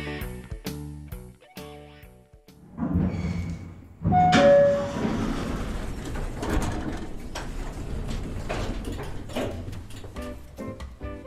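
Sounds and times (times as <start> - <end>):
hotel elevator doors sliding shut with a clunk: 2.6 - 11.0.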